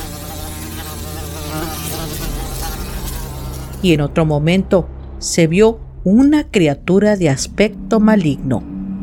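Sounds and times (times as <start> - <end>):
houseflies swarming and buzzing in a room: 0.0 - 4.2
speech: 3.8 - 8.7.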